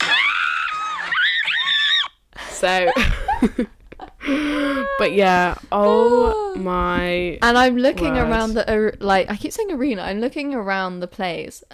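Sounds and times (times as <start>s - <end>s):
person screaming excitedly: 0.0s - 2.1s, 4.6s - 5.2s
speech: 2.6s - 11.7s.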